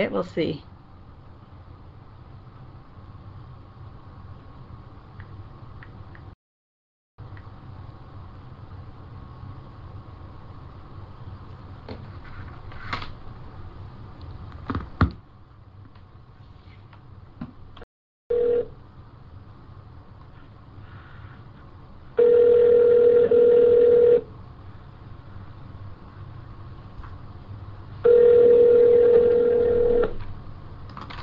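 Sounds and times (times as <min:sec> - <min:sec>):
speech: 0:00.0 - 0:00.7
faint hum: 0:00.0 - 0:06.4, 0:07.2 - 0:31.2
long steady electronic phone tones: 0:18.3 - 0:18.8, 0:22.2 - 0:24.2, 0:28.1 - 0:30.2.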